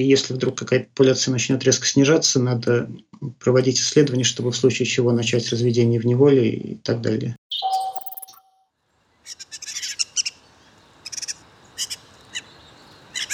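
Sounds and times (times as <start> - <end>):
speech: 0.0 - 7.7
common starling singing in New York: 7.5 - 8.5.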